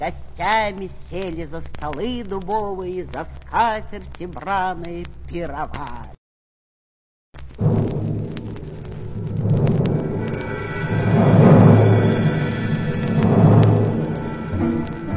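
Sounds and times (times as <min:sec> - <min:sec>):
speech: 0:00.0 - 0:06.2
deep rolling thunder: 0:07.6 - 0:15.1.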